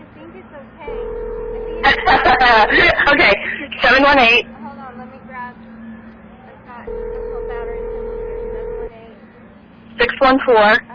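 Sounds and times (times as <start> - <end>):
speech: 0.5 - 1.2, 1.8 - 4.5, 10.2 - 10.9
phone dial tone for a cell phone call: 0.9 - 2.0, 6.9 - 8.9
laughter: 1.8 - 3.8.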